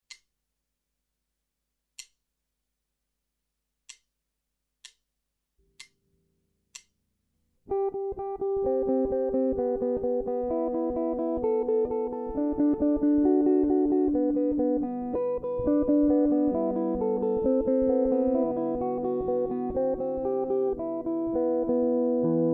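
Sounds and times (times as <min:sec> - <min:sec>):
jazz guitar fingerpicking exercises: 0:07.7 - 0:22.5.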